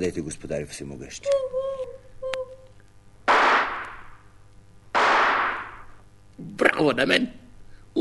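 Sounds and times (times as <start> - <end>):
speech: 0.0 - 1.8, 6.8 - 7.4
rifle shots fired by a hunter at a bird: 3.3 - 4.2, 5.0 - 6.0.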